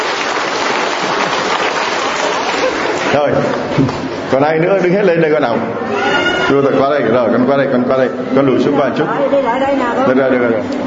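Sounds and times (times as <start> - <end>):
congregation applauding at a church sermon: 0.0 - 4.0
speech: 3.1 - 10.8.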